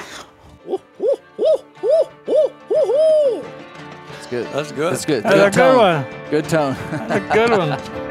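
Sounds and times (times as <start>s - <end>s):
laughter: 0.5s - 3.5s, 5.1s - 8.0s
person imitating owl hoots: 0.6s - 3.5s
speech: 4.3s - 8.0s.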